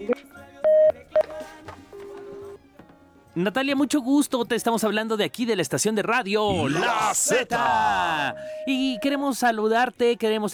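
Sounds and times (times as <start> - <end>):
telephone number dialled on a touch-tone keypad: 0.0 - 1.4, 8.3 - 9.2
speech: 3.4 - 10.5.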